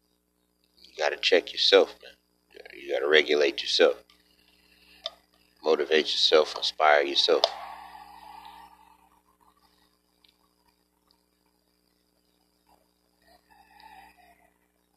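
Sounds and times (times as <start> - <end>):
low steady hum: 0.0 - 14.9
speech: 1.0 - 2.2, 2.8 - 4.0, 5.6 - 7.6
rooster crowing: 7.5 - 9.0, 13.4 - 14.4.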